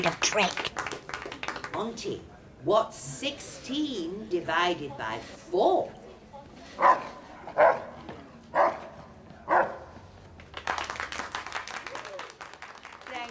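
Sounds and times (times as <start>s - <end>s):
speech: 0.0s - 0.7s, 1.8s - 6.0s, 7.6s - 7.8s
people clapping: 0.0s - 2.0s, 10.3s - 13.2s
dog barking: 6.8s - 9.9s.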